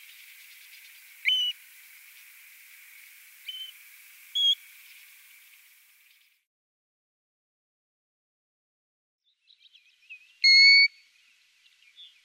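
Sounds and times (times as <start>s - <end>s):
background hiss: 0.0s - 6.5s, 9.5s - 12.2s
European golden plover whistled calls: 1.2s - 1.6s, 3.5s - 3.8s, 4.4s - 4.6s, 10.4s - 11.0s.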